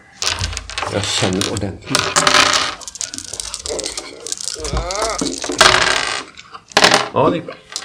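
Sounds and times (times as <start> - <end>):
three dice rolled across a hard surface for a game: 0.2 - 7.1
speech: 0.9 - 2.8, 7.2 - 7.7
person murmuring: 3.5 - 5.6.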